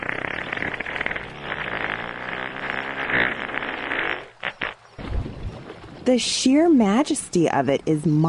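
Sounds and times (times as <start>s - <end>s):
humpback whale fart: 0.0s - 5.1s
speech: 6.1s - 8.2s.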